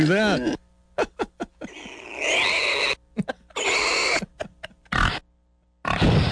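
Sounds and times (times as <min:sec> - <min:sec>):
speech: 0:00.0 - 0:00.6
laughter: 0:01.0 - 0:01.9, 0:03.2 - 0:03.6, 0:04.2 - 0:04.9
pig grunting and squealing: 0:01.7 - 0:05.2, 0:05.8 - 0:06.2.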